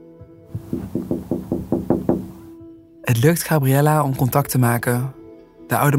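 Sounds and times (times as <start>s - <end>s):
knocking on a window pane: 0.5s - 2.5s
speech: 3.1s - 5.9s.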